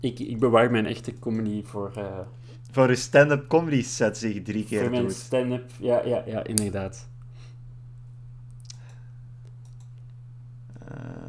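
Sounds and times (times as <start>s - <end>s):
speech: 0.0s - 7.1s
steady low electrical hum: 0.0s - 11.2s
computer mouse clicking: 8.4s - 10.8s.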